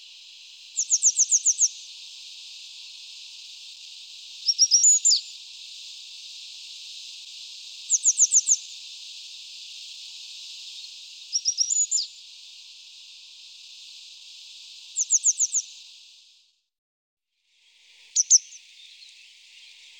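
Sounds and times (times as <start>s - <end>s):
constant hiss: 0.0s - 16.6s, 17.5s - 19.9s
grey wagtail calling: 2.9s - 15.9s, 18.2s - 19.9s.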